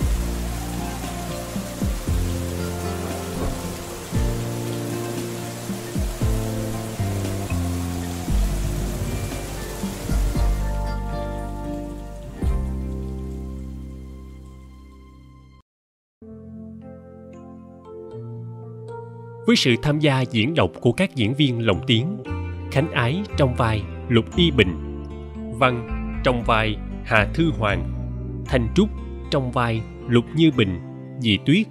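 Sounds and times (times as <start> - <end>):
steady rain falling: 0.0 - 14.4
music: 0.0 - 15.6, 16.2 - 31.7
speech: 19.5 - 24.9, 25.6 - 27.9, 28.5 - 31.7.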